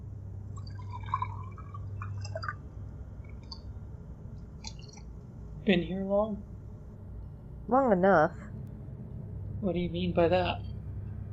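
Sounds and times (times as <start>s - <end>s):
low hum: 0.0s - 11.3s
water trickling and splashing into a glass: 0.6s - 2.6s
speech: 5.7s - 6.5s, 7.7s - 8.6s, 9.6s - 10.7s.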